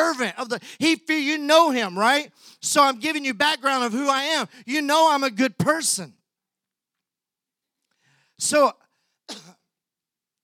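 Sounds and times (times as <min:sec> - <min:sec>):
speech: 0:00.2 - 0:06.2, 0:08.4 - 0:09.6
short harsh cough: 0:09.3 - 0:09.7.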